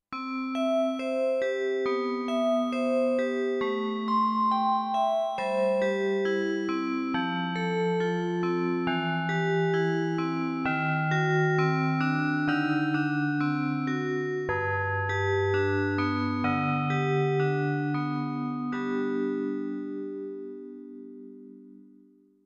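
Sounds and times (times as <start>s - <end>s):
vibraphone bells: 0.2s - 19.5s.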